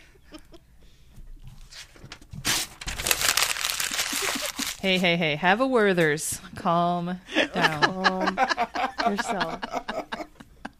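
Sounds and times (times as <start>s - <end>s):
papers rustling and notebook pages turning: 1.6s - 5.2s
laughter: 4.0s - 4.8s, 7.3s - 10.7s
speech: 4.8s - 9.8s.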